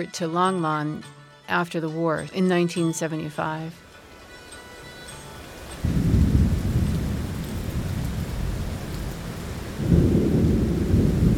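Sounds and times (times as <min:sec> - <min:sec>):
speech: 0:00.0 - 0:03.8
heavy monsoon rain: 0:03.9 - 0:11.3
deep rolling rumble of thunder: 0:05.8 - 0:11.3.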